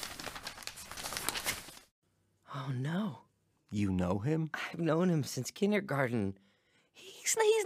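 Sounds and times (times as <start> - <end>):
newspaper pages rustling as handed over: 0.0 - 1.9
speech: 2.6 - 7.6.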